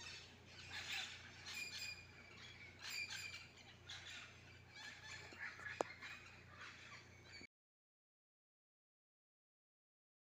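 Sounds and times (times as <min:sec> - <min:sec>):
wild green parakeets squawking while feeding on mangoes in a garden mango tree: 0:00.0 - 0:07.5.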